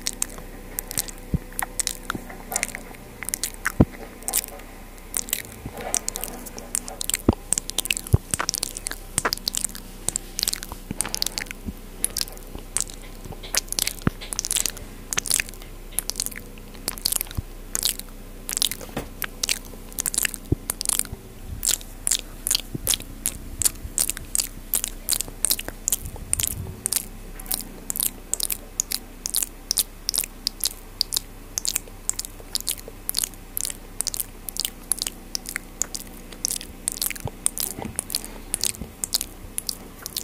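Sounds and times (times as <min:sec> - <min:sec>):
low murmur: 0:00.0 - 0:40.2
soft crunchy chewing-like textures: 0:00.0 - 0:40.2
wet mouth clicks and smacks: 0:00.0 - 0:40.2.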